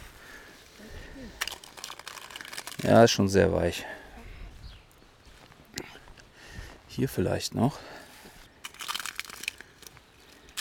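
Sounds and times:
soft dry rustling and crinkling: 0:00.0 - 0:03.4, 0:08.1 - 0:10.5
sharp crackles: 0:01.3 - 0:03.2, 0:08.6 - 0:10.5
speech: 0:02.8 - 0:04.0, 0:07.0 - 0:07.9.

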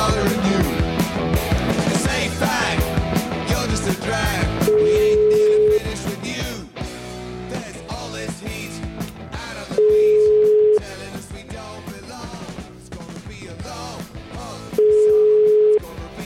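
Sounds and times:
loud busy music: 0:00.0 - 0:16.2
telephone ringback tone while a caller waits for an answer: 0:04.7 - 0:05.9, 0:09.8 - 0:10.8, 0:14.8 - 0:15.9.

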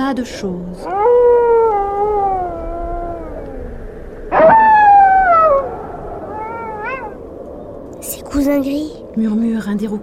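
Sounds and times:
faint wind: 0:00.0 - 0:10.0
speech: 0:00.1 - 0:01.3, 0:08.4 - 0:10.0
long modulated wolf howl: 0:00.8 - 0:07.4.

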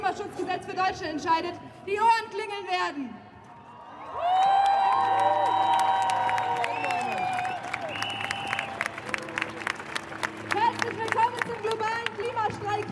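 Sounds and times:
speech: 0:00.7 - 0:03.3
packed crowd cheering at a global climate strike rally: 0:03.5 - 0:12.8.

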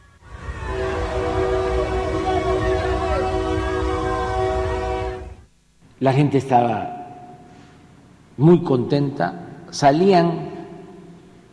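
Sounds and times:
multi-tone horn of the new Interoceanic train in Mexico: 0:00.0 - 0:05.5
speech: 0:06.0 - 0:07.0, 0:08.4 - 0:10.5.

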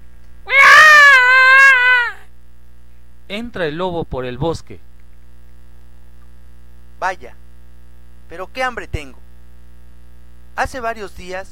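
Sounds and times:
child crying and screaming while refusing to eat: 0:00.5 - 0:02.3
speech: 0:03.3 - 0:04.9, 0:07.0 - 0:07.4, 0:08.3 - 0:09.2, 0:10.6 - 0:11.5.

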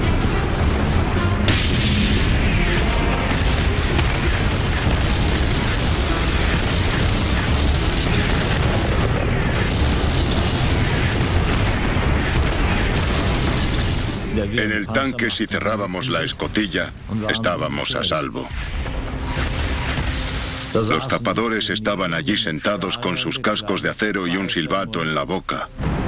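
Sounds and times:
artillery fire pounding a river crossing: 0:00.1 - 0:17.1, 0:18.2 - 0:21.7
speech: 0:14.6 - 0:19.0, 0:20.7 - 0:25.9.

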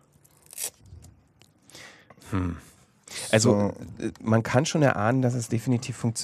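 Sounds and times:
Velcro hook-and-loop strip pulled apart during a cardboard VR headset craft: 0:00.2 - 0:00.9
speech: 0:02.3 - 0:02.7, 0:03.3 - 0:06.2.

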